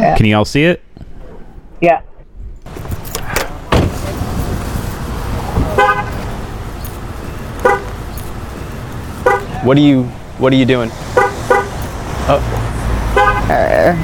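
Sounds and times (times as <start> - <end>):
speech: 0.0 - 0.9, 1.8 - 2.1, 9.6 - 11.2, 12.3 - 12.7, 13.5 - 14.0
steady outdoor noise: 0.0 - 14.0
car horn chirps as a car is locked: 5.7 - 6.3, 7.4 - 8.2, 9.1 - 9.6, 11.1 - 11.9, 13.1 - 14.0.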